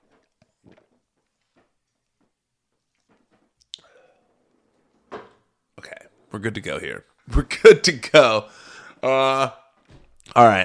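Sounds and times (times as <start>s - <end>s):
person gulping and swallowing water: 3.6s - 4.0s
faint mouth noises: 3.6s - 4.2s
person exhaling: 3.8s - 4.4s, 8.5s - 9.0s
speech: 6.4s - 9.6s, 10.4s - 10.6s.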